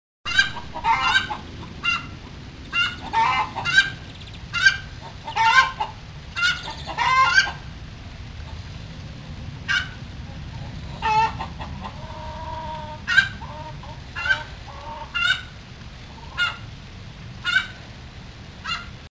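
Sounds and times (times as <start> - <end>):
chicken chorus: 0.3 - 7.7, 9.7 - 16.7, 17.4 - 17.8, 18.6 - 18.9.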